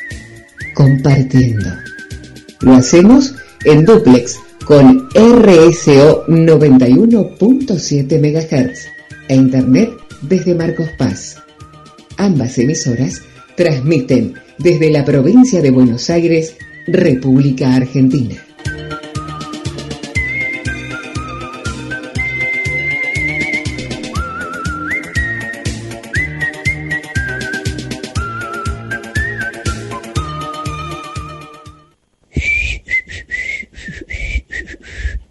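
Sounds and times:
person whistling a lilting tune: 0.0s - 7.4s, 8.0s - 35.2s
steady rhythmic musical backing: 0.0s - 32.0s
speech: 0.8s - 2.0s, 2.6s - 11.4s, 12.2s - 18.4s.

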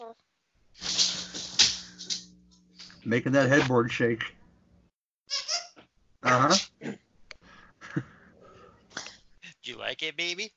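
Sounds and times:
speech: 3.0s - 4.4s, 6.2s - 7.0s, 10.0s - 10.5s
squeaky toy shrill squeak: 5.3s - 5.8s.

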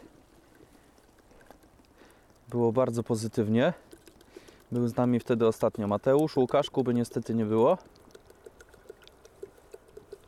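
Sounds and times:
water pouring: 0.0s - 10.2s
speech: 2.5s - 4.0s, 4.7s - 8.0s.

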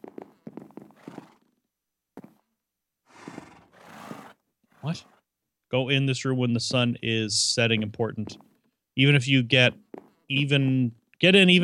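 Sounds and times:
horse whinnying and neighing: 1.0s - 1.5s, 3.1s - 5.2s
speech: 4.9s - 5.1s, 5.7s - 11.6s.

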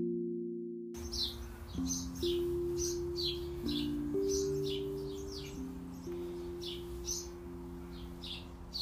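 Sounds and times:
birds chirping: 1.0s - 8.8s.

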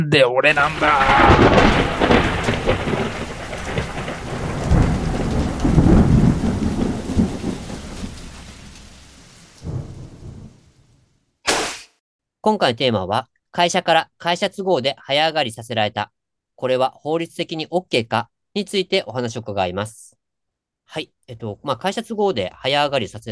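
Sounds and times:
speech: 0.0s - 2.1s, 12.4s - 20.1s, 20.9s - 23.2s
deep rolling thunder: 0.5s - 11.0s
steady heavy rain in a thunderstorm: 0.5s - 11.0s.

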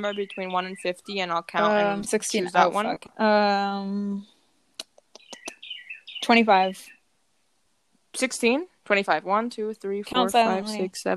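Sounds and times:
birds chirping in quick sharp bursts and high trills: 0.0s - 3.0s, 5.2s - 6.9s
speech: 0.0s - 4.3s, 6.2s - 7.0s, 8.2s - 11.1s
person speaking in a low voice: 1.0s - 4.2s, 9.9s - 11.1s.

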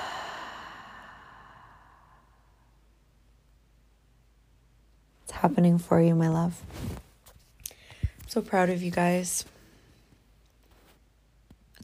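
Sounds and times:
big inhale and exhale during a guided breathing cue: 0.0s - 2.6s
speech: 5.4s - 7.0s, 8.3s - 9.6s.

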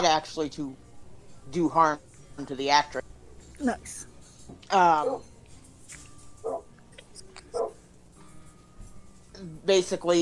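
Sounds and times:
speech: 0.0s - 0.8s, 1.5s - 5.3s, 9.4s - 10.2s
dog barking: 5.0s - 5.2s, 6.4s - 6.7s, 7.5s - 7.8s.

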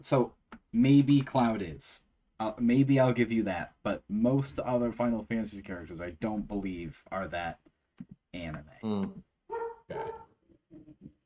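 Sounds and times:
speech: 0.0s - 9.3s, 9.9s - 10.2s
dog barking: 9.5s - 10.3s.

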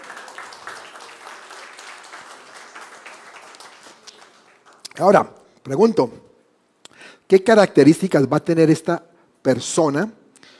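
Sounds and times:
church audience applauding: 0.0s - 5.0s
speech: 5.0s - 6.2s, 7.3s - 10.2s.

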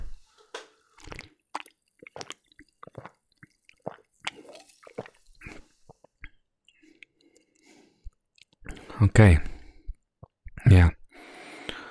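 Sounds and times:
sipping a ginger mojito drink: 1.0s - 9.0s
swallowing: 1.0s - 9.0s
speech: 9.0s - 9.5s.

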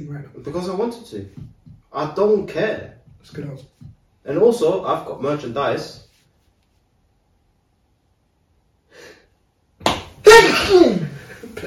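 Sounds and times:
speech: 0.0s - 6.0s, 10.6s - 11.0s
single sharp noisy sneeze: 10.2s - 11.2s.

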